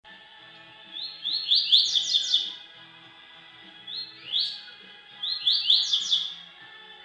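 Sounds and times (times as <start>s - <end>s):
double-collared seedeater song: 0.6s - 2.7s, 3.8s - 7.0s.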